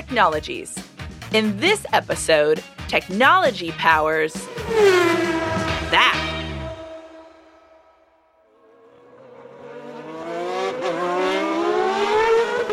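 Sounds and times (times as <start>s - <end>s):
speech: 0.1s - 6.3s
McLaren Formula 1 race car speeding past at high speed: 4.3s - 12.7s
Formula 1 race car engine high-pitched whine accelerating: 4.4s - 11.2s.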